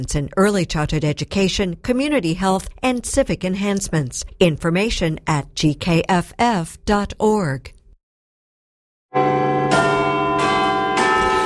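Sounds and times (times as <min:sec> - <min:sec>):
speech: 0:00.0 - 0:07.8
large clock tower bells chiming: 0:09.2 - 0:11.4.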